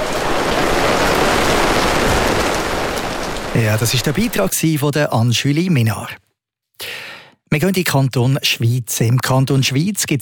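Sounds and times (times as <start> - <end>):
steady rain: 0.0 - 4.6
speech: 3.6 - 6.2, 7.5 - 10.2.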